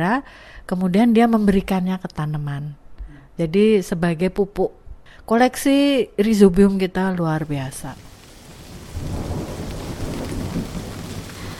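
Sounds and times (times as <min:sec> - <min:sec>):
speech: 0:00.0 - 0:02.8, 0:03.4 - 0:08.1
continuous wash of falling rain: 0:07.4 - 0:11.5
deep rolling rumble of thunder: 0:07.4 - 0:11.5.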